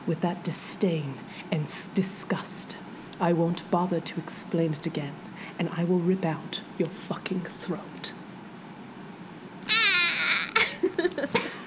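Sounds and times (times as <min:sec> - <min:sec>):
speech: 0:00.1 - 0:08.2
high-pitched vocal squeal: 0:09.7 - 0:10.6
laughter: 0:09.7 - 0:11.6.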